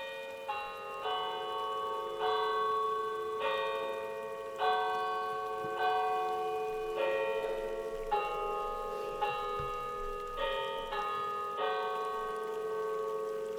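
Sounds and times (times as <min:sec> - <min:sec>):
church bell tolling: 0:00.0 - 0:13.3
faint hiss of noise: 0:00.0 - 0:13.5.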